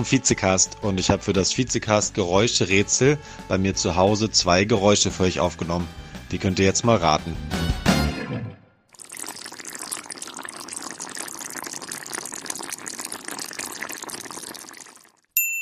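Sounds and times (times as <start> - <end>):
speech: 0.0 - 7.8
food bubbling and crackling in a pan on a stove: 8.9 - 15.3.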